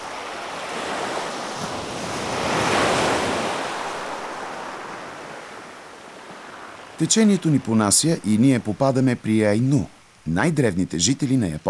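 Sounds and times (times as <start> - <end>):
ocean waves breaking in a continuous roar of surf: 0.0 - 10.5
speech: 7.0 - 11.6.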